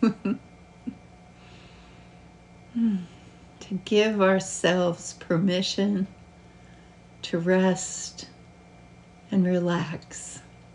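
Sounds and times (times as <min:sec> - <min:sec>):
quiet breathing: 0:01.3 - 0:03.6, 0:06.3 - 0:07.2
breathy yawn: 0:02.7 - 0:03.2
speech: 0:03.8 - 0:06.2, 0:07.3 - 0:08.3, 0:09.3 - 0:10.4.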